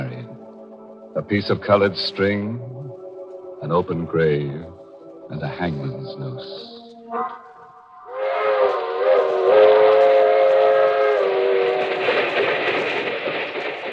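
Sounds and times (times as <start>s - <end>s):
moving passenger train rumbling and clattering: 0.0s - 6.8s, 8.2s - 13.9s
speech: 1.2s - 2.8s, 3.6s - 7.4s
passenger train whistle blowing: 6.7s - 12.6s.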